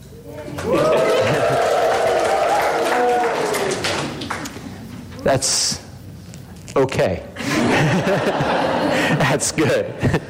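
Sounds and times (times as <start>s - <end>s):
crowd cheering and whooping: 0.3s - 4.2s
people clapping: 0.4s - 4.8s
laughter: 0.6s - 1.9s, 7.4s - 10.2s
speech: 5.3s - 5.8s, 6.8s - 10.2s.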